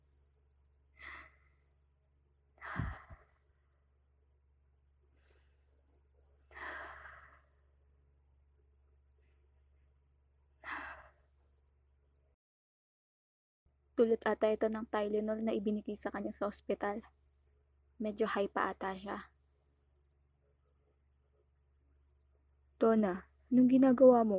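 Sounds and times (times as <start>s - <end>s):
slow heavy breathing: 0.9s - 1.8s, 2.6s - 3.6s, 6.4s - 7.8s, 10.6s - 11.4s
speech: 14.0s - 17.2s, 18.0s - 19.3s, 22.8s - 24.3s.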